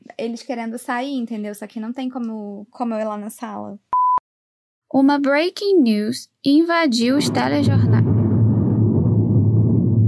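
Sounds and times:
speech: 0:00.2 - 0:03.9, 0:04.9 - 0:08.1
deep loud thunder rumbling: 0:07.1 - 0:10.0.

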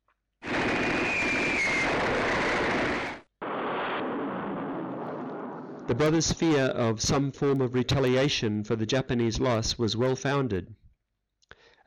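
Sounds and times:
bombs dropped by a bomber exploding on boats in a bay: 0:00.4 - 0:07.2
faint falling whistle of dropping bombs: 0:00.7 - 0:03.2
speech: 0:05.9 - 0:10.8.

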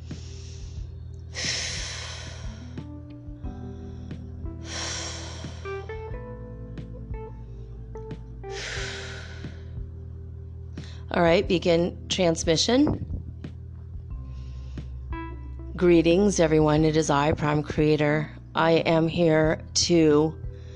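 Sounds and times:
deep breaths drawn and released: 0:00.0 - 0:05.9, 0:07.3 - 0:10.0, 0:10.7 - 0:11.1, 0:14.1 - 0:15.2, 0:20.5 - 0:20.7
steady tonal musical background: 0:00.0 - 0:20.7
speech: 0:11.2 - 0:13.1, 0:15.8 - 0:20.4.

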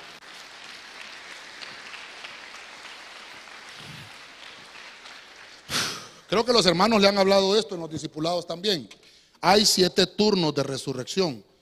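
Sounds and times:
crowd clapping in a large room: 0:00.0 - 0:06.8
speech: 0:06.3 - 0:11.5.

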